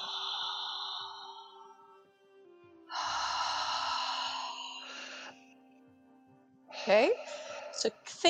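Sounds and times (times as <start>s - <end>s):
loud open-mouthed breathing: 0.0s - 2.1s, 2.9s - 5.6s, 6.8s - 7.8s
speech: 6.9s - 8.2s.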